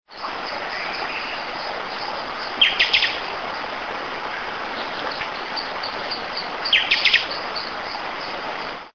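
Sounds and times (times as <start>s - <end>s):
Sporophila frontalis: 0.2s - 3.2s, 4.3s - 8.4s.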